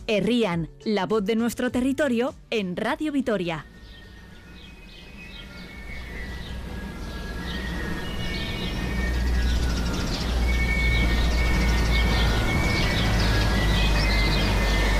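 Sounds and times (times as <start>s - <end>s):
speech: 0.1s - 3.7s
birds chirping and twittering in San Vicente de Arana: 2.8s - 14.9s
txistu flute music played by a group of txistu players: 3.3s - 14.9s
passing traffic in village streets of San Vicente de Arana: 3.6s - 14.9s.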